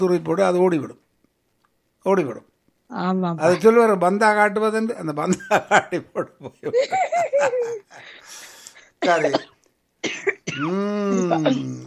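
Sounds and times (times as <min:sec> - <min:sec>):
speech: 0:00.0 - 0:01.0, 0:02.0 - 0:11.8
laughter: 0:05.3 - 0:08.0
light dry cough from a parched throat: 0:09.0 - 0:10.7.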